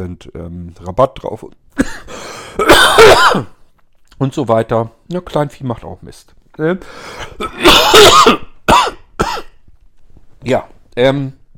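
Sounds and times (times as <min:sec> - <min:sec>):
speech: 0:00.0 - 0:03.6, 0:04.2 - 0:08.5, 0:10.4 - 0:11.4
person in a loud coughing fit: 0:01.8 - 0:03.6, 0:07.2 - 0:09.6.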